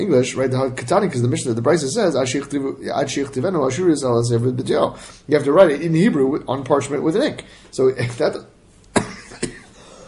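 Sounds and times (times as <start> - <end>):
speech: 0.0 - 8.4
person coughing from something caught in the throat: 9.0 - 9.8.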